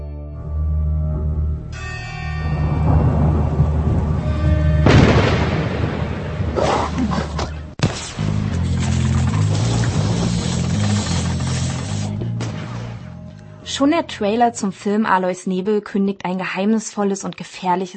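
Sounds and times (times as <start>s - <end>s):
sustained low droning tone: 0.3s - 5.4s, 8.3s - 14.8s
loud resonant bell-like tones: 1.6s - 4.7s
deep rolling thunder: 2.4s - 7.8s
loud booming gunshots: 4.9s - 11.6s, 12.3s - 13.1s
speech: 13.8s - 17.9s.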